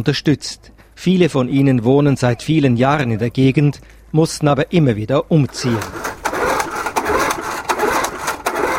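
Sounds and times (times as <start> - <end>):
speech: 0.0 - 6.1
small lawnmower engine being started: 5.5 - 8.7.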